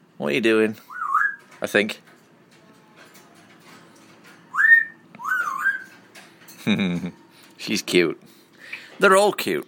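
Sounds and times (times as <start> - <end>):
speech: 0.2 - 0.9, 1.6 - 2.1, 6.6 - 8.4, 9.0 - 9.6
pet parrot whistling two gliding notes: 0.9 - 1.5, 4.5 - 5.9.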